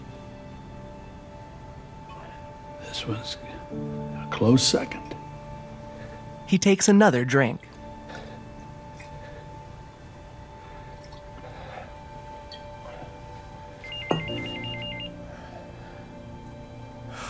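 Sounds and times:
low hum: 0.0s - 17.2s
speech: 3.0s - 5.2s, 6.5s - 8.2s
phone ringing: 13.8s - 15.3s.

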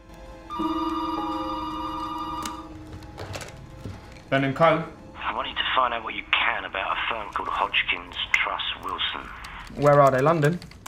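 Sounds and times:
telephone ringing with a single sustained electronic tone: 0.5s - 3.2s
speech: 4.3s - 5.0s, 5.8s - 10.7s.

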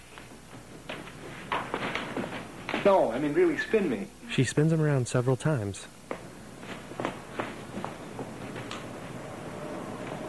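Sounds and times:
footsteps walking across a floor toward a window: 0.0s - 3.0s, 6.1s - 9.2s
steady hiss: 0.0s - 10.2s
speech: 2.8s - 6.0s.

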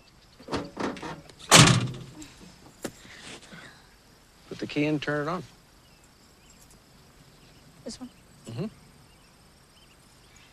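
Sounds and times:
truck cab door slamming shut: 0.5s - 2.2s
speech: 4.6s - 5.6s.

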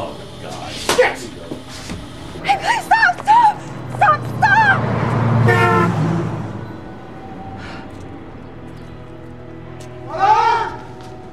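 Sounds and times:
low rumble of passing car: 2.2s - 9.7s
oncoming car horn blaring: 5.2s - 6.9s.

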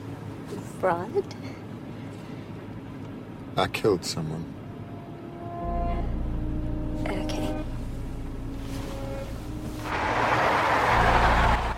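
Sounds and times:
speech: 0.8s - 1.6s, 3.6s - 4.6s
timber truck engine and road rumble: 5.9s - 11.7s
car pulling away across a parking area: 7.8s - 11.7s.

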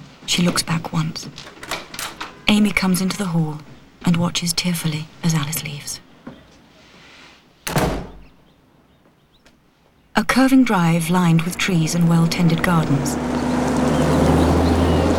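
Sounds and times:
speech: 0.3s - 1.6s, 2.5s - 6.0s, 10.4s - 14.1s
front door shutting with a thud: 7.7s - 8.4s
car engine rumbling as the car pulls up at a building entrance: 10.7s - 15.1s.

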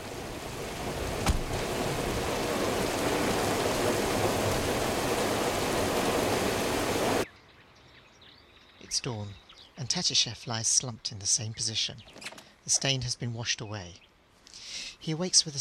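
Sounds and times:
heavy rain falling on a car: 0.0s - 7.2s
speech: 9.0s - 14.1s, 15.0s - 15.5s.

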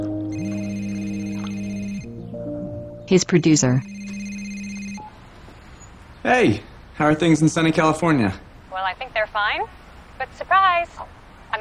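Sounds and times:
mobile phone electronic ringtone: 0.3s - 2.1s, 3.7s - 5.1s
speech: 3.1s - 4.0s, 6.3s - 11.2s.

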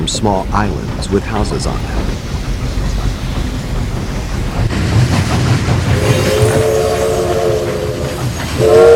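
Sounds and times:
train wheels clattering on rails through flooded fields: 0.0s - 8.9s
speech: 0.1s - 2.1s
train whistle blasts: 6.0s - 8.9s.

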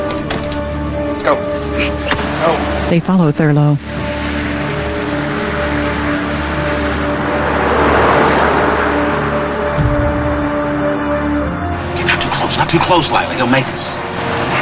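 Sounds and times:
SUV engine hum and road noise: 0.0s - 14.5s
speech: 1.3s - 4.0s, 12.7s - 14.1s
soft thump: 9.8s - 10.6s.

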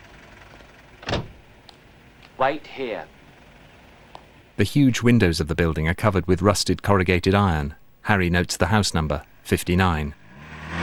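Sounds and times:
speech: 2.4s - 3.2s, 4.6s - 10.2s
taxi cab speeding around a corner and stopping: 10.3s - 10.8s.

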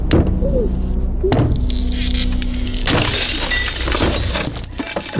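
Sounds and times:
sharp knocks: 0.1s - 0.4s, 1.3s - 1.7s
glass door shattering as a person runs into it: 1.8s - 5.1s.

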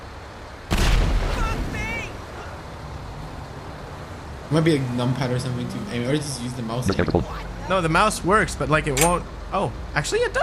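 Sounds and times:
heavy tank cannon blast in a video game: 0.7s - 1.4s
speech: 4.5s - 10.4s.

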